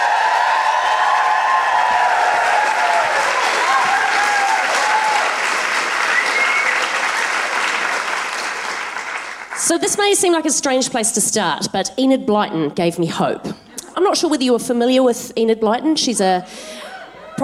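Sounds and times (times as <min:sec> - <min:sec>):
audience whooping and cheering: 0:00.0 - 0:07.8
audience clapping as a guest is welcomed to the stage: 0:00.0 - 0:09.8
speech: 0:09.7 - 0:16.8.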